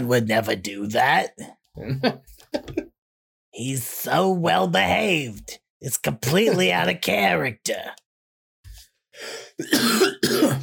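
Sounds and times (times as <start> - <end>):
speech: 0.0 - 2.8, 3.6 - 8.0, 9.2 - 10.6
person coughing close to the mic: 9.6 - 10.6.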